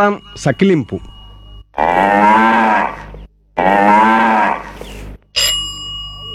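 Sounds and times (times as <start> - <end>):
speech: 0.0 - 1.1, 1.8 - 2.3
short bright ringing chime: 0.0 - 2.8, 5.2 - 6.3
cow mooing: 1.8 - 4.8.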